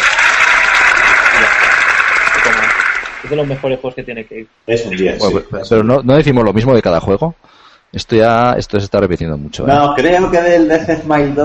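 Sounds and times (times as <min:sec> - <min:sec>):
crowd applause: 0:00.0 - 0:03.6
speech: 0:03.3 - 0:11.4.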